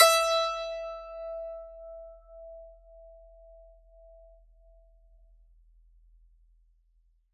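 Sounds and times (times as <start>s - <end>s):
E4 note picked on strings: 0.0s - 2.0s.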